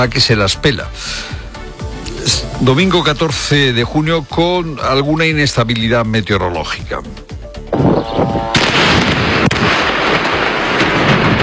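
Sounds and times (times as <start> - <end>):
speech: 0.0 - 1.4, 2.2 - 8.6
explosions from the Israeli bombardment of Lebanon roaring and rumbling: 7.8 - 11.4
sharp cracking blasts from the Israeli bombardment of Lebanon: 8.3 - 11.4.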